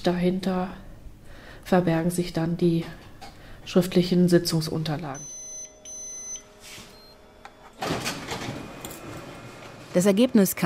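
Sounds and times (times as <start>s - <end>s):
speech: 0.0s - 0.8s, 1.6s - 3.0s, 3.7s - 5.3s, 10.0s - 10.6s
office printer electronic tones: 5.2s - 7.8s
shared office printer running with mechanical whir and rattle in a hallway: 7.4s - 10.6s.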